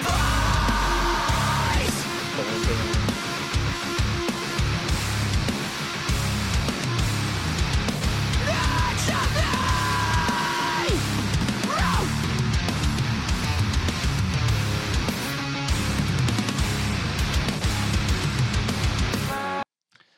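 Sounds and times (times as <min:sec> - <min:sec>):
harsh screaming vocal in music: 0:00.0 - 0:02.1, 0:08.4 - 0:12.3
loud dense distorted music recording: 0:00.0 - 0:19.6.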